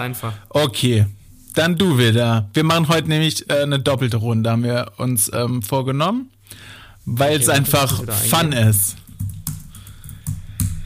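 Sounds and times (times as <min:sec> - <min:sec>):
speech: 0:00.0 - 0:09.0
typing on a computer keyboard: 0:08.3 - 0:10.8.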